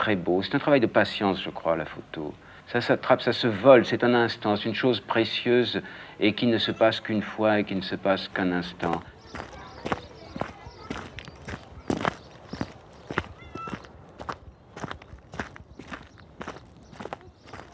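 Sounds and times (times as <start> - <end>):
speech: 0.0 - 10.0
light outdoor ambience: 0.0 - 17.7
footsteps crunching along a dirt path: 7.8 - 17.7.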